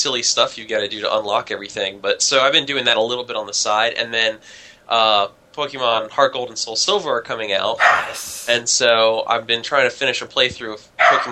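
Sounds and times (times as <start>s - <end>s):
speech: 0.0s - 11.3s
small corgi barking: 7.8s - 8.3s, 11.0s - 11.3s.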